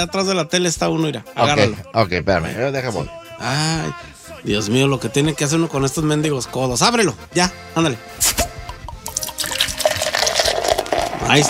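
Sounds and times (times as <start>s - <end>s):
speech: 0.0s - 8.4s, 11.3s - 11.4s
fizzy drink bubbling and crackling in a glass: 8.9s - 11.4s.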